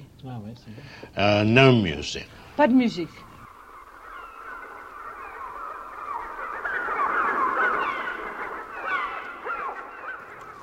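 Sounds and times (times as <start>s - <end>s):
speech: 0.2s - 3.3s
dense chorus of harsh honking bird cries: 2.9s - 10.6s.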